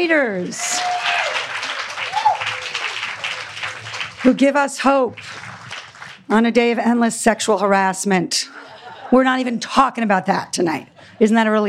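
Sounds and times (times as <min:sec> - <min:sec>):
speech: 0:00.0 - 0:01.1, 0:04.2 - 0:05.3, 0:06.3 - 0:11.6
audience applauding: 0:00.4 - 0:06.3.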